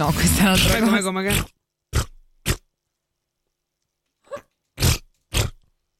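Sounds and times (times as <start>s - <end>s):
speech: 0.0s - 1.6s
mouth imitation of armpit fart noises: 1.3s - 2.7s, 4.8s - 5.7s.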